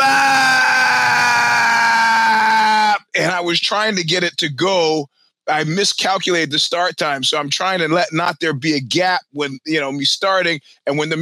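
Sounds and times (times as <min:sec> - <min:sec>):
long held scream: 0:00.0 - 0:03.0
speech: 0:03.4 - 0:11.2.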